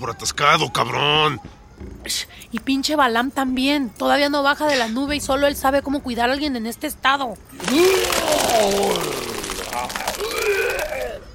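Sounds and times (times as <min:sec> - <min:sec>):
speech: 0:00.0 - 0:09.2
man retching and vomiting onto the floor: 0:07.6 - 0:11.3.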